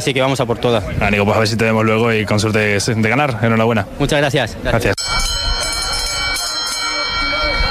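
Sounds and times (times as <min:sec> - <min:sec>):
speech: 0:00.0 - 0:05.3
crowd voices murmuring outdoors at a horse race: 0:00.0 - 0:07.6
loud bell ringing to start a horse race: 0:05.0 - 0:07.6.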